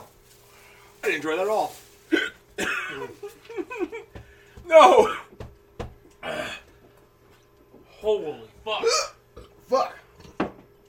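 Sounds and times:
speech: 1.1 - 2.2, 3.0 - 5.2, 8.0 - 9.1, 9.7 - 10.0
voiced groans and strained breaths: 6.2 - 6.9
person hiccuping: 8.8 - 9.6.

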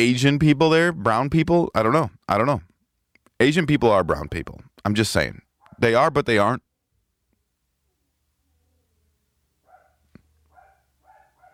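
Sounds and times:
speech: 0.0 - 2.7, 3.4 - 6.7
dog barking muffled: 5.6 - 5.9, 9.6 - 11.5.

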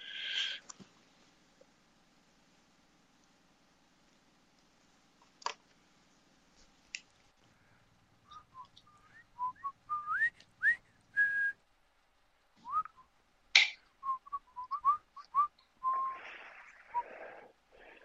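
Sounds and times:
person whistling a tune in a quiet room: 8.3 - 11.6, 12.6 - 13.1, 14.0 - 16.2.

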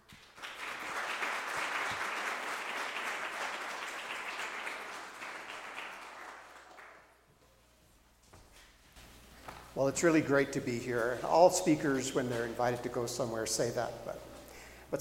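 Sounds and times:
room full of people applauding: 0.0 - 7.2
speech: 9.8 - 14.3.

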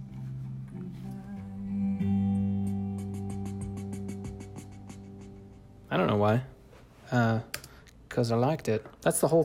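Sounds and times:
held chords ringing out at the close of a song: 0.0 - 6.6
speech: 5.9 - 6.5, 7.1 - 7.6, 8.2 - 9.4.

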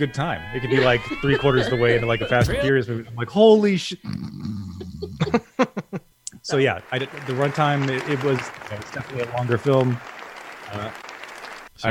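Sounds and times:
speech: 0.0 - 4.5, 5.2 - 5.7, 6.4 - 11.1
hand clapping: 7.0 - 11.7.

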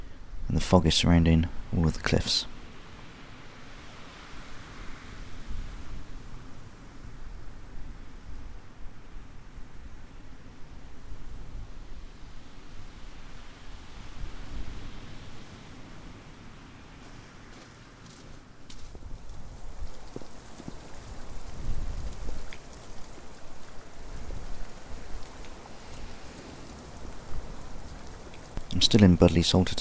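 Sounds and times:
speech: 0.5 - 2.6, 29.0 - 29.7
heavy rain during thunderstorm: 19.0 - 29.7
water drips and splashes: 19.1 - 29.7.

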